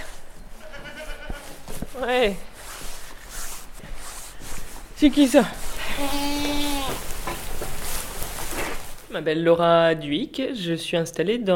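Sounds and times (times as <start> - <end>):
goats bleating in a barn: 0.6 - 1.6, 5.8 - 7.2
speech: 2.0 - 2.5, 5.0 - 7.0, 9.2 - 11.5.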